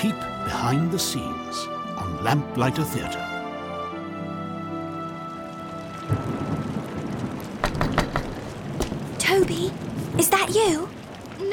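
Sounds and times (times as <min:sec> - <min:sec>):
speech: 0:00.0 - 0:03.3, 0:09.3 - 0:11.5
steady rain hissing: 0:00.0 - 0:11.5
low rumble of thunder: 0:04.2 - 0:11.5
wind gusts: 0:04.2 - 0:11.5
sharp thunder cracks: 0:05.8 - 0:11.5.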